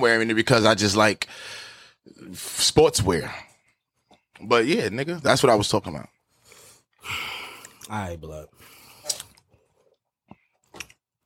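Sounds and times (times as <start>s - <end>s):
speech: 0.0s - 3.5s, 4.4s - 6.2s, 7.0s - 7.3s, 7.9s - 8.7s
person sipping a drink: 7.4s - 7.9s, 8.8s - 11.0s
gulp: 8.9s - 9.5s.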